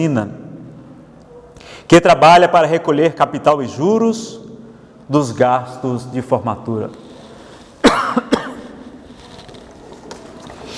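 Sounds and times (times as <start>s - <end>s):
speech: 0.0s - 0.4s, 1.9s - 4.5s, 5.1s - 7.0s
low steady noise: 0.0s - 10.7s
person in an audience coughing: 7.8s - 8.8s.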